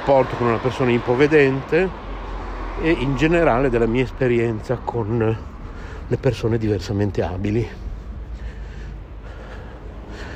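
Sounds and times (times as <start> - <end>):
speech: 0.0 - 2.0, 2.8 - 5.5, 6.1 - 7.8
heavy panting while hurrying: 8.0 - 10.3.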